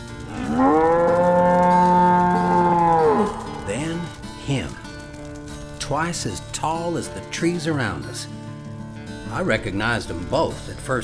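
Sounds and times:
cow mooing: 0.3 - 4.4
speech: 6.0 - 8.4, 9.3 - 11.0.

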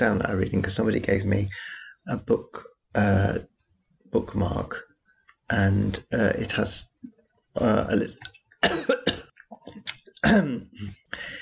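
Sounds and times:
speech: 0.0 - 3.5, 4.1 - 4.9, 5.5 - 9.1, 9.7 - 11.4
person with a cold clearing throat: 8.6 - 9.2, 10.2 - 11.4
person with a cold coughing: 8.6 - 9.2, 10.2 - 10.9.

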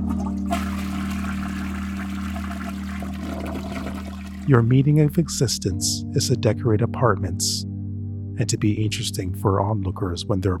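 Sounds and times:
toilet flushing with churning gurgling water: 0.0 - 4.6
speech: 4.5 - 7.7, 8.4 - 10.5.

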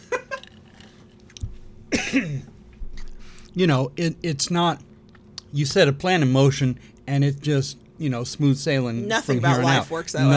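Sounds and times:
person coughing: 1.9 - 2.5
speech: 2.1 - 2.5, 3.6 - 4.9, 5.5 - 10.3.

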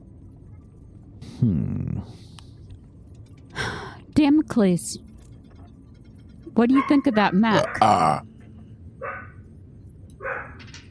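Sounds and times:
steady low rumble: 0.0 - 10.9
speech: 1.3 - 2.4, 4.2 - 5.1, 6.6 - 8.3
dogs barking: 6.6 - 8.0, 9.0 - 9.4, 10.2 - 10.6.

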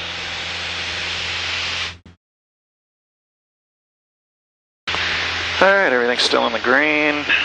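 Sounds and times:
Cessna light aircraft propeller engine roaring at full power during a climb: 0.0 - 2.1, 4.9 - 7.4
speech: 5.6 - 7.4.

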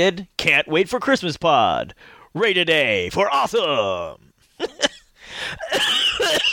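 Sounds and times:
speech: 0.0 - 6.5
harsh coughing: 5.4 - 6.5.

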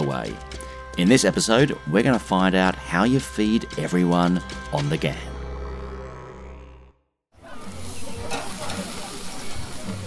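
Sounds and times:
music: 0.0 - 6.7, 7.4 - 10.0
speech: 0.1 - 5.3
beef steaks sizzling on a barbecue grill at the Alice Springs Telegraph Station: 7.5 - 10.0.

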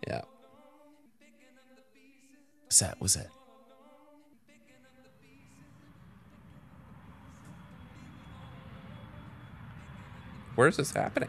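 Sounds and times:
speech: 2.7 - 3.4, 10.6 - 11.2
airplane passing overhead: 5.0 - 11.2.

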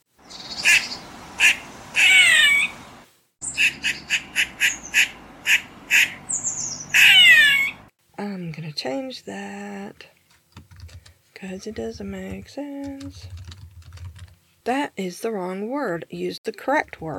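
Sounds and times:
eastern gray squirrel alarm call: 0.2 - 2.8, 3.4 - 7.9
speech: 11.4 - 13.5, 14.6 - 17.1.

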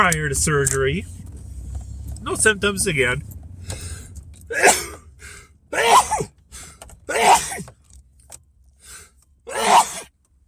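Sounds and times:
speech: 0.0 - 1.2, 2.2 - 3.8, 4.5 - 4.8
person sneezing after a nasal COVID swab: 4.5 - 5.0, 5.8 - 6.3, 7.1 - 7.7, 9.5 - 10.1.

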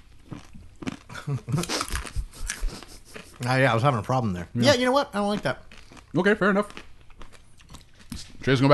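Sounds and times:
corn nuts being chewed: 0.2 - 3.6, 5.3 - 8.4
speech: 1.3 - 2.0, 3.4 - 6.8, 8.4 - 8.7.

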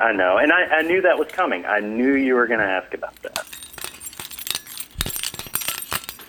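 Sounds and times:
speech: 0.0 - 3.4
car keys slapped against a hollow copper pig: 0.7 - 1.5, 3.0 - 6.2.

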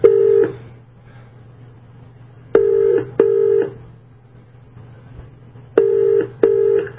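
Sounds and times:
ringback tone from a call over a Skype line to a New Zealand phone number: 2.6 - 3.8, 5.8 - 6.9.

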